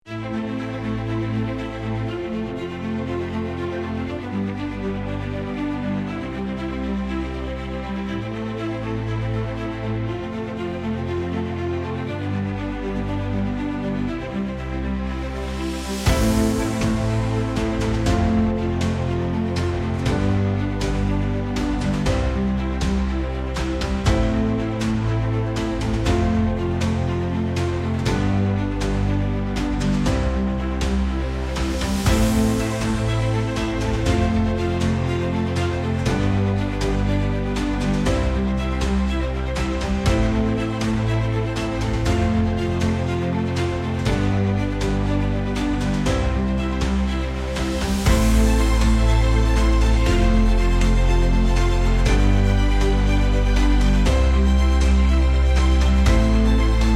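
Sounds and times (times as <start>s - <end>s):
epic string music: 0.0s - 56.9s.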